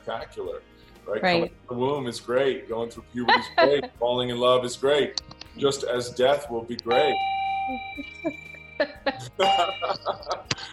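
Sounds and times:
speech: 0:00.0 - 0:10.7
laughter: 0:03.2 - 0:04.0, 0:08.8 - 0:10.7
struck bell ringing: 0:06.8 - 0:10.4.

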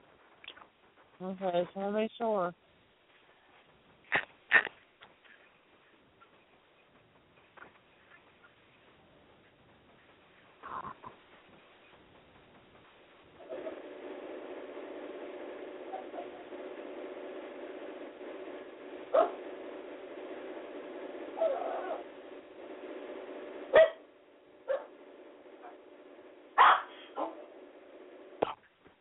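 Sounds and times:
steady hum: 0:00.0 - 0:28.9
speech: 0:01.2 - 0:02.7
dog barking: 0:19.1 - 0:19.4, 0:23.7 - 0:24.0, 0:24.7 - 0:24.9, 0:26.6 - 0:27.4.

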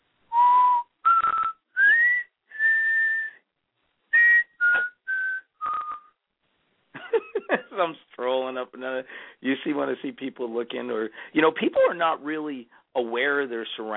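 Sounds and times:
person whistling a slow eerie horror-film melody: 0:00.3 - 0:03.4, 0:04.2 - 0:06.1
speech: 0:07.5 - 0:13.9.

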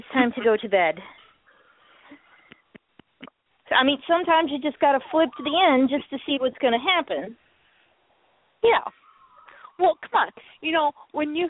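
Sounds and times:
speech: 0:00.2 - 0:01.2, 0:03.7 - 0:07.4, 0:08.6 - 0:09.0, 0:09.8 - 0:11.4
pet bird in a cage growling: 0:01.2 - 0:02.5, 0:08.8 - 0:10.2.

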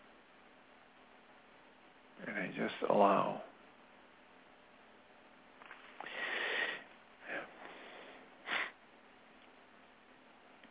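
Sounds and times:
low hiss: 0:00.0 - 0:10.6
speech: 0:02.4 - 0:03.5
person taking quiet breaths through the nose: 0:06.0 - 0:06.9, 0:07.6 - 0:08.8.

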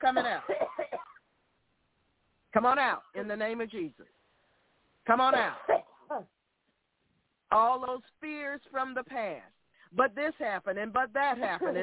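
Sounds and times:
person coughing raspily: 0:00.0 - 0:01.2
speech: 0:00.1 - 0:00.8, 0:02.5 - 0:04.2, 0:05.0 - 0:06.4, 0:07.6 - 0:11.8.

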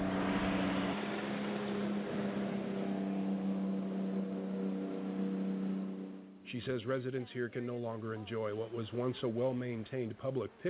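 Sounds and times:
border patrol motorboat engine droning on a river: 0:00.0 - 0:06.5
speech: 0:06.5 - 0:10.6.

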